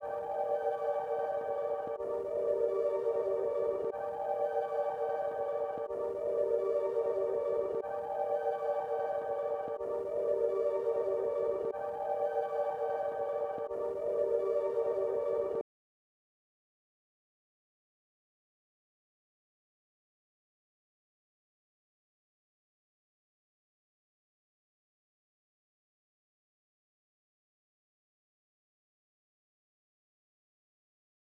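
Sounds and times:
synth pad melody loop in G minor: 0:00.0 - 0:15.6.

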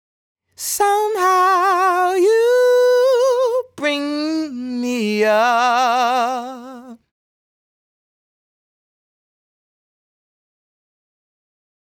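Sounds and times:
dry sung vocal phrase in G sharp minor: 0:00.6 - 0:07.1.

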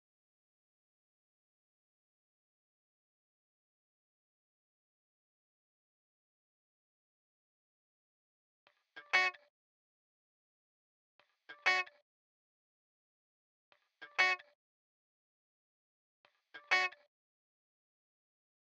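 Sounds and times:
high guitar loop in B minor: 0:09.2 - 0:09.4, 0:11.7 - 0:11.9, 0:14.2 - 0:14.4, 0:16.6 - 0:17.0.

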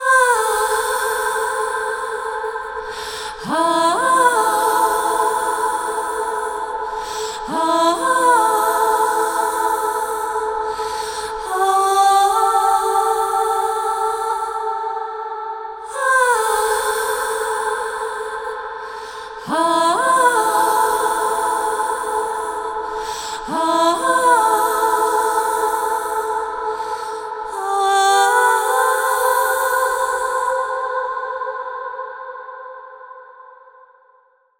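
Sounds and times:
wet harmony ah vocals in A minor: 0:00.0 - 0:33.0.

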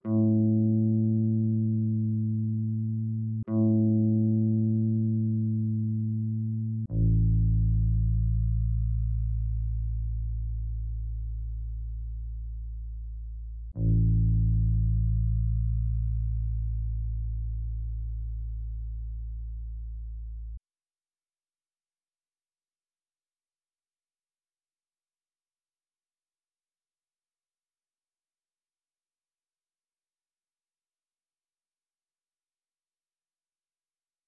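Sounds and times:
bass line in A minor at 140 BPM: 0:00.1 - 0:20.6.

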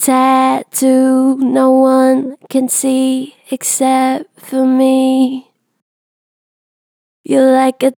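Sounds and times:
vocals with gentle natural vibrato: 0:00.0 - 0:05.6.

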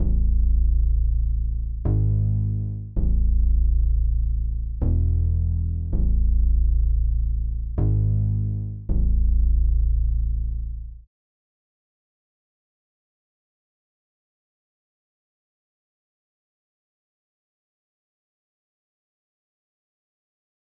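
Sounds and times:
162 BPM C sharp minor R&B bass melody loop: 0:00.0 - 0:11.0.

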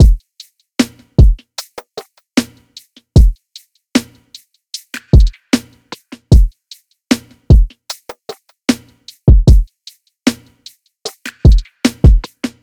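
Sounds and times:
drum loop: 0:00.0 - 0:00.2, 0:00.8 - 0:03.4, 0:04.0 - 0:09.7, 0:10.3 - 0:12.6.

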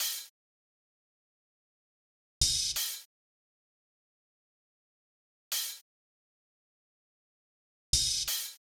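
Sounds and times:
boom bap drum loop with open hi-hat: 0:00.0 - 0:00.2, 0:02.4 - 0:03.0, 0:08.0 - 0:08.6.

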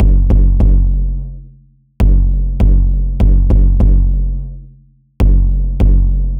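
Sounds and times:
experimental kick drum loop at 150 BPM: 0:00.0 - 0:01.0, 0:02.0 - 0:04.2, 0:05.2 - 0:06.3.

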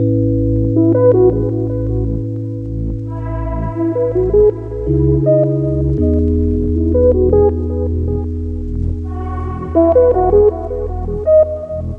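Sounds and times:
lofi hip hop melody at 80 BPM in C sharp minor: 0:00.0 - 0:11.9.

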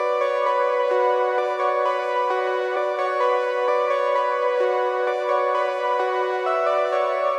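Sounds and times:
130 BPM B minor OB-X synth keys loop: 0:00.0 - 0:07.3.

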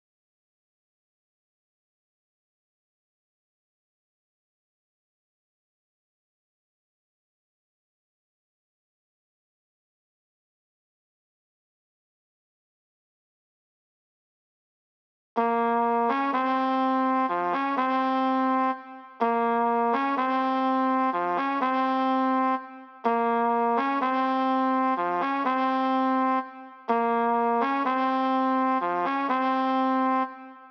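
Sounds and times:
trap trumpet melody loop in F minor: 0:15.4 - 0:30.7.

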